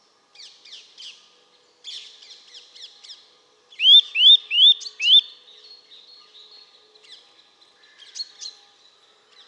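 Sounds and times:
Eurasian nuthatch Sitta europaea calling: 0:03.8 - 0:05.3.

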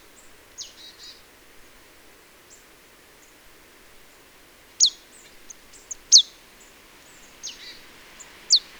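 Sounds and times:
marsh tit Poecile palustris calls: 0:04.8 - 0:06.4, 0:07.4 - 0:08.7.

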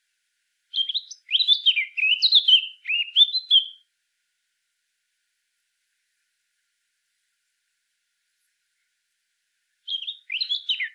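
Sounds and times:
Eurasian blackcap singing: 0:00.7 - 0:03.8, 0:09.9 - 0:10.9.

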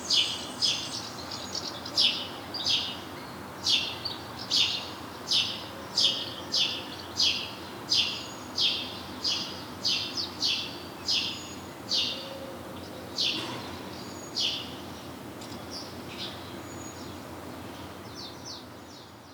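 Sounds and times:
house sparrow Passer domesticus chirps: 0:00.1 - 0:12.3, 0:13.1 - 0:17.1.

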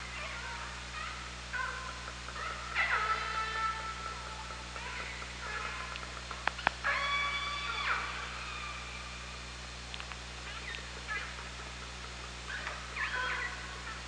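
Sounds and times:
orca pulsed calls recorded with a hydrophone: 0:00.0 - 0:14.0
steady low underwater hum: 0:00.0 - 0:14.0
orca clicks: 0:05.9 - 0:06.8, 0:09.9 - 0:10.9.

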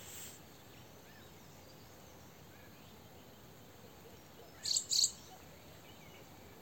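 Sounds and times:
quiet background hiss: 0:00.0 - 0:06.5
Eurasian wren Troglodytes troglodytes call: 0:04.6 - 0:05.2.

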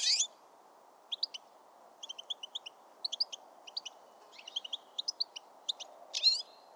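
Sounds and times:
low steady background noise: 0:00.0 - 0:06.7
European Goldfinch twittering: 0:01.1 - 0:01.4, 0:02.0 - 0:05.9.

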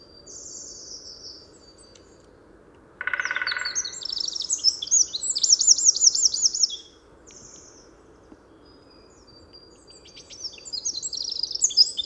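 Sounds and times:
Eurasian wren Troglodytes troglodytes trilling and twittering: 0:03.0 - 0:06.8.

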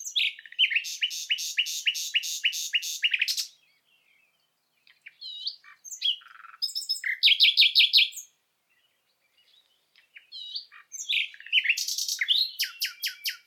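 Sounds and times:
common nightingale Luscinia megarhynchos singing whistles, clicks and trills: 0:00.0 - 0:13.4.

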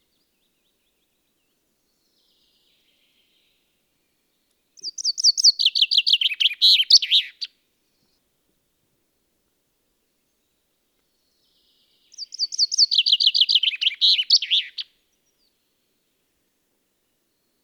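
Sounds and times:
common chaffinch Fringilla coelebs singing: 0:04.8 - 0:07.5, 0:12.1 - 0:14.9.

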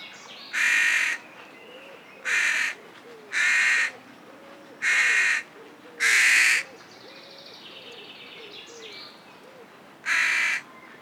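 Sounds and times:
carrion crow Corvus corone cawing: 0:00.6 - 0:01.2, 0:02.3 - 0:03.9, 0:04.8 - 0:06.7, 0:10.1 - 0:10.6.

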